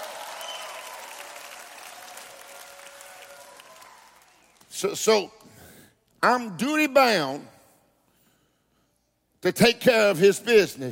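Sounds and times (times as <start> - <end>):
crowd applauding at a religious gathering: 0.0 - 4.8
speech: 4.7 - 5.4, 6.2 - 7.5, 9.4 - 10.8.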